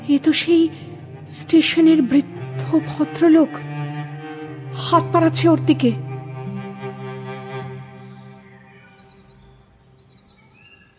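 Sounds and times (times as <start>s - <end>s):
steady tonal background: 0.0s - 10.9s
speech: 0.1s - 3.7s, 4.8s - 6.0s
mobile phone alarm beeping: 8.8s - 10.9s.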